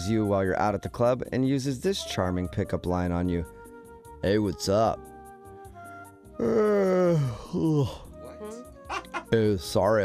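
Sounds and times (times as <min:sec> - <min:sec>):
speech: 0:00.0 - 0:03.6, 0:04.2 - 0:05.1, 0:06.4 - 0:08.0, 0:08.9 - 0:10.0
person moaning: 0:06.4 - 0:08.0
person yawning: 0:06.4 - 0:08.0.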